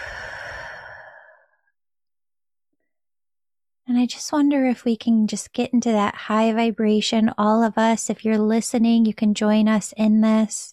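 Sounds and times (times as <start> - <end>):
person exhaling one slow deep breath: 0.0 - 1.7
speech: 4.0 - 10.7.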